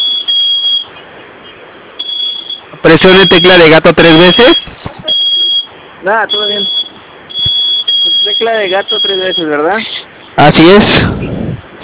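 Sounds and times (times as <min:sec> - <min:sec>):
high steady electronic alarm tone: 0:00.0 - 0:00.9, 0:02.0 - 0:05.7, 0:06.3 - 0:09.6
speech: 0:02.8 - 0:04.6, 0:06.0 - 0:06.8, 0:08.4 - 0:11.4.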